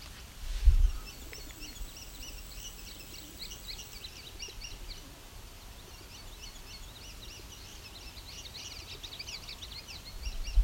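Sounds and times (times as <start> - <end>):
faint outdoor noise: 0.0 - 10.6
rock doves cooing in trees: 0.9 - 6.2
indigo bunting high chirps: 0.9 - 10.6.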